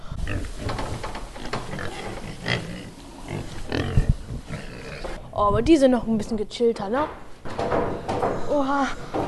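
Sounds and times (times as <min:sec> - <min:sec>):
pigs grunting and snuffling in a reverberant barn: 0:00.2 - 0:00.8, 0:01.4 - 0:05.2
speech: 0:05.4 - 0:07.2, 0:08.5 - 0:09.2.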